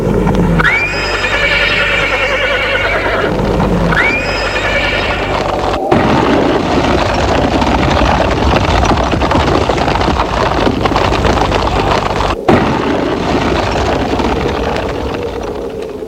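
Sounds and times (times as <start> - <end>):
steady noise: 0.0 - 16.0
horse neighing as a rider mounts the saddle: 0.6 - 7.4.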